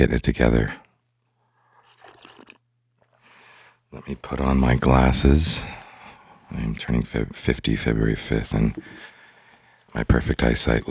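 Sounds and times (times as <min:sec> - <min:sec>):
speech: 0:00.0 - 0:00.8, 0:03.9 - 0:05.8, 0:06.5 - 0:09.1, 0:09.9 - 0:10.8
quiet hum: 0:00.0 - 0:10.8
person sipping tea with wet slurping: 0:01.6 - 0:03.8.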